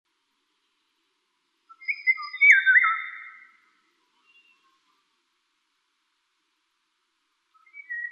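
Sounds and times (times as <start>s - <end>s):
Eurasian golden oriole Oriolus oriolus giving a melodious whistled phrase: 1.7s - 4.8s, 7.6s - 8.1s.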